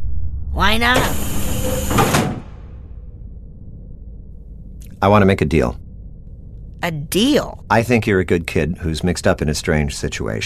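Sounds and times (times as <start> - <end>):
speech: 0.6 - 2.0, 5.0 - 5.8, 6.8 - 10.4
sliding door to a person's room shutting: 1.0 - 2.6.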